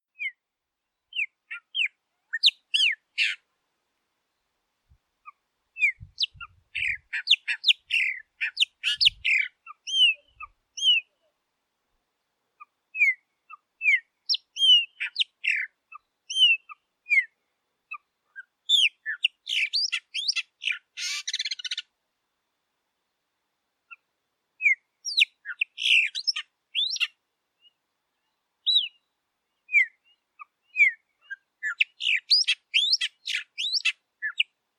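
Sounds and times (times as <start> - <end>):
pássaro-preto singing: 1.0 - 3.4, 5.8 - 11.3, 13.0 - 17.3, 17.9 - 21.8, 24.6 - 34.5.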